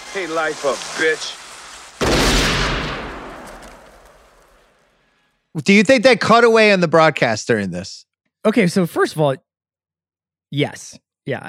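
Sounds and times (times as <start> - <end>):
speech: 0.2 - 1.4, 5.6 - 9.4, 10.5 - 11.4
gunshot as a man shoots himself: 2.0 - 4.9.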